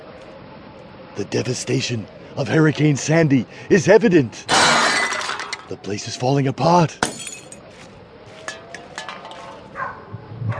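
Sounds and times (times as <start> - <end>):
steady noise: 0.0 - 10.5
speech: 1.2 - 4.7, 5.7 - 7.2
light clinks and rustles of a dog rummaging for scraps: 7.0 - 7.7, 8.4 - 9.9.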